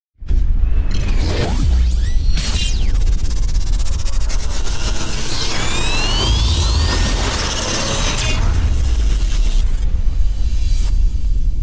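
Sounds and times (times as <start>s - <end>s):
futuristic technology intro sound: 0.6s - 11.6s.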